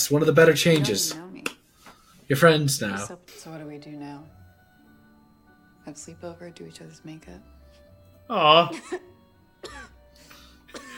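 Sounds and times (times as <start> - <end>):
speech: 0.1 - 1.5, 2.3 - 4.4, 5.8 - 7.6, 8.3 - 9.9
woman coughing: 8.7 - 10.0, 10.7 - 10.9.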